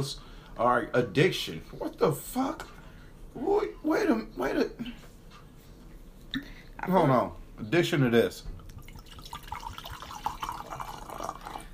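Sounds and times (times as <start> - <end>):
speech: 0.0 - 2.8, 3.4 - 5.1, 6.3 - 8.6
liquid pouring into a glass: 8.6 - 11.7.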